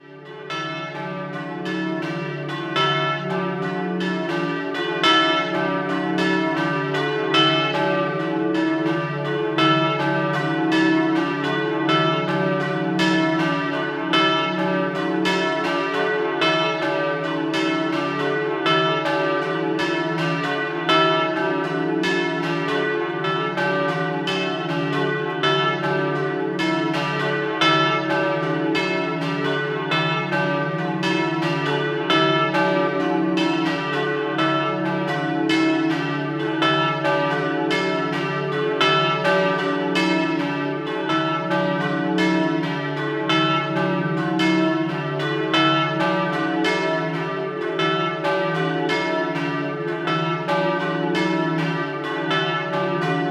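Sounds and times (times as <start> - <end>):
church bells ringing: 0.0 - 53.2.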